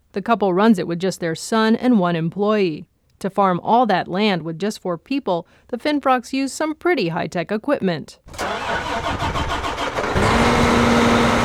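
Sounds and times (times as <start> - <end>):
speech: 0.2 - 8.5
tractor engine cranking and starting: 8.3 - 11.4
tractor engine idling with a low droning hum: 8.4 - 10.6.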